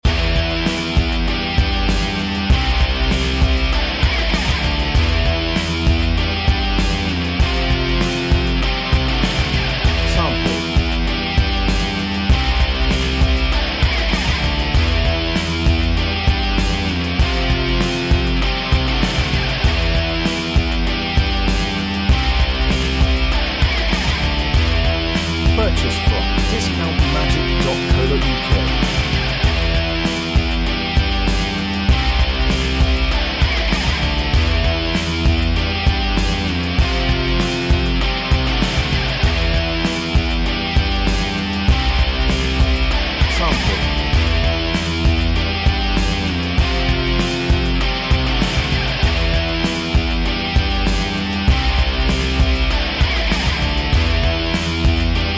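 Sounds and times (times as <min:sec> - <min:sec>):
rock synth music: 0:00.0 - 0:55.3.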